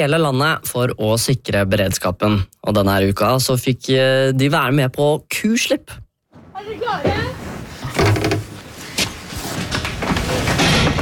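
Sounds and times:
speech: 0:00.0 - 0:06.0, 0:06.6 - 0:07.4
dull thumps and knocks of the barn door: 0:06.3 - 0:08.7
heavy cow barn door rumbling and scraping as it slides open: 0:06.3 - 0:11.0.

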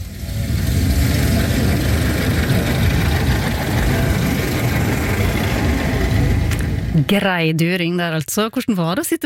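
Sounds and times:
vintage car engine running while driving: 0:00.0 - 0:07.3
speech: 0:07.1 - 0:09.2.

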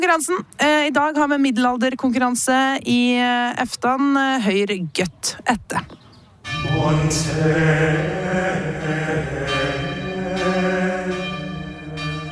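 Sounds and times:
speech: 0:00.0 - 0:06.0, 0:06.6 - 0:09.4
church bells ringing: 0:06.4 - 0:12.3.

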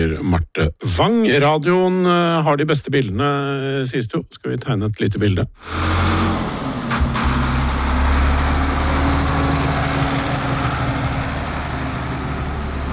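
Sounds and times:
speech: 0:00.0 - 0:06.4
tractor engine rumbling while driving around: 0:05.6 - 0:12.9.

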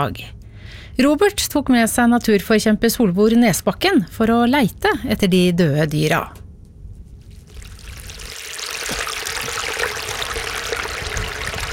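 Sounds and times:
speech: 0:00.0 - 0:06.4
creek flowing with bubbling splashes: 0:07.4 - 0:11.7.

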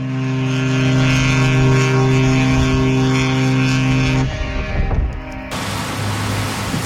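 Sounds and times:
coastal express passenger ship engine drone at sea: 0:00.0 - 0:06.8.

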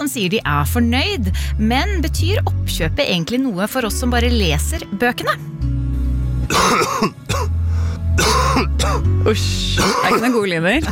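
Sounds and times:
speech: 0:00.1 - 0:05.6, 0:06.5 - 0:07.5, 0:09.2 - 0:10.9
harsh throat clearing: 0:06.5 - 0:07.5, 0:08.2 - 0:09.1, 0:09.8 - 0:10.4
person coughing: 0:06.5 - 0:07.6, 0:08.2 - 0:09.1, 0:09.8 - 0:10.9.

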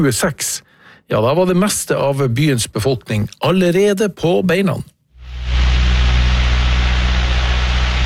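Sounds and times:
speech: 0:00.0 - 0:04.9
deep droning airship engines: 0:05.2 - 0:08.0.

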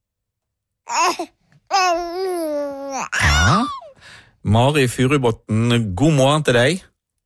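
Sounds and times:
baby giggling: 0:00.9 - 0:03.9
speech: 0:00.9 - 0:06.9.

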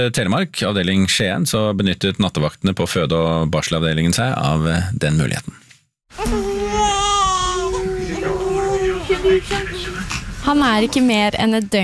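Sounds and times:
speech: 0:00.0 - 0:06.5, 0:09.3 - 0:11.8
newborn baby crying in a hospital maternity ward in Skien Norway: 0:06.2 - 0:09.7.

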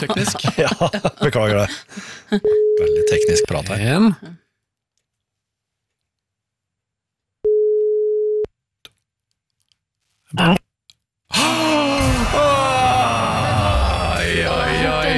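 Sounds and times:
laughter: 0:00.0 - 0:02.6
speech: 0:00.0 - 0:04.4, 0:10.3 - 0:10.6
telephone ringing tone: 0:07.4 - 0:08.5
loud dense noise: 0:11.4 - 0:15.1.

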